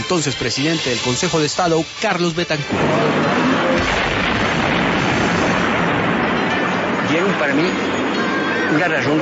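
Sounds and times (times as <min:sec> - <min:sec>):
speech: 0:00.1 - 0:04.0, 0:07.2 - 0:09.2
tank cannon blast: 0:02.7 - 0:08.2.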